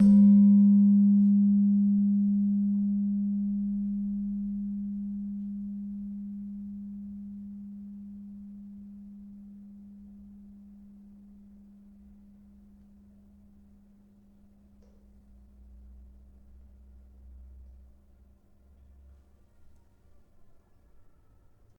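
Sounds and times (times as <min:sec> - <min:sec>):
gamelan-tuned slentem metallophone note in G sharp: 0:00.0 - 0:10.2.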